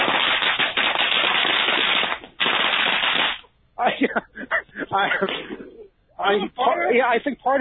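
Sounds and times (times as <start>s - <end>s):
string of firecrackers popping: 0.0s - 3.5s
laughter: 3.8s - 7.2s
speech: 4.1s - 7.5s.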